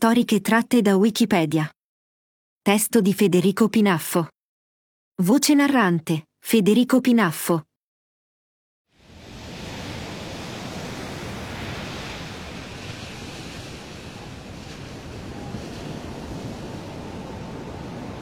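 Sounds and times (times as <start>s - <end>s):
speech: 0.0s - 1.8s, 2.6s - 4.4s, 5.2s - 7.7s
rough sea with high waves surging: 9.0s - 18.1s.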